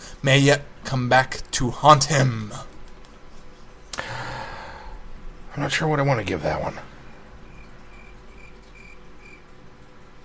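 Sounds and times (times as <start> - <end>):
constant low hum: 0.0 - 10.2
speech: 0.2 - 2.7, 5.6 - 6.9
crickets chirping: 7.1 - 9.5.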